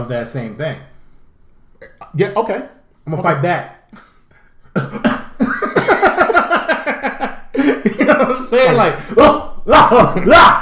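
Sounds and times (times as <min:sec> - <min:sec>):
speech: 0:00.0 - 0:00.9, 0:01.8 - 0:04.0, 0:07.2 - 0:10.6
deliberate exaggerated hacking coughing: 0:04.0 - 0:06.4
laughter: 0:05.4 - 0:10.6.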